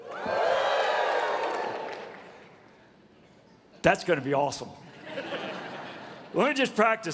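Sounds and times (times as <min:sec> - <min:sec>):
crowd cheering and whooping: 0:00.0 - 0:02.6
speech: 0:03.8 - 0:04.9, 0:06.3 - 0:07.1
laughter: 0:04.9 - 0:06.4.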